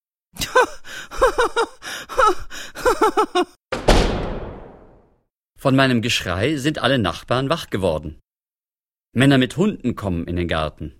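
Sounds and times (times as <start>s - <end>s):
person laughing in breathy rhythmic bursts: 0.4s - 3.6s
door slammed shut: 3.7s - 5.1s
speech: 5.6s - 8.2s, 9.2s - 10.9s.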